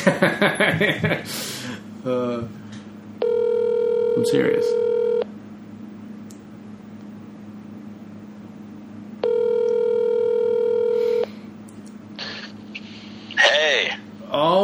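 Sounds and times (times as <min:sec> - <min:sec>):
laughter: 0:00.0 - 0:01.3
speech: 0:00.0 - 0:02.6, 0:04.2 - 0:04.8
low hum: 0:00.0 - 0:14.6
phone call electronic ring tone: 0:03.2 - 0:05.2, 0:09.2 - 0:11.3.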